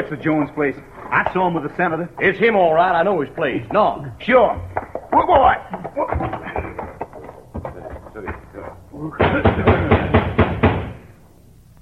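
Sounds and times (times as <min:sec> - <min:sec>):
speech: 0:00.0 - 0:06.0
knocking and pounding on a door at night: 0:03.6 - 0:11.1.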